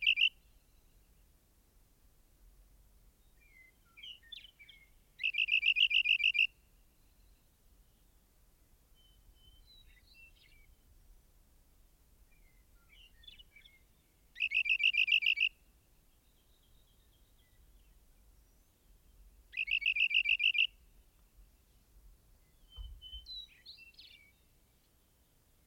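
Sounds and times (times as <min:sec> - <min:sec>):
rock wren song of loud rapid trills: 0:00.0 - 0:00.4, 0:05.2 - 0:06.5, 0:14.4 - 0:15.5, 0:19.5 - 0:20.7
brief low thump: 0:22.7 - 0:23.4.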